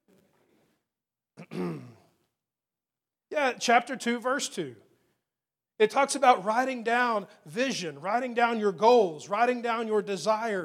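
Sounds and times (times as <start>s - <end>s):
person fake coughing and clearing throat: 1.4s - 2.1s
speech: 3.4s - 4.9s, 5.8s - 10.6s.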